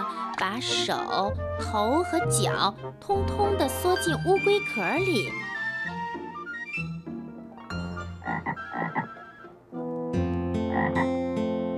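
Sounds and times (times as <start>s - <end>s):
steady bright musical backing: 0.0s - 11.7s
speech: 0.2s - 5.5s
frogs croaking: 7.9s - 9.4s, 10.7s - 11.2s.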